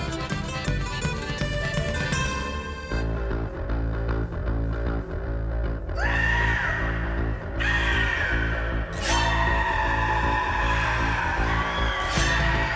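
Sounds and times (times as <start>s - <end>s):
folk-punk song: 0.0s - 12.7s
heavy driving bass line: 0.0s - 12.7s
piercing vocal shrieks: 5.9s - 12.7s.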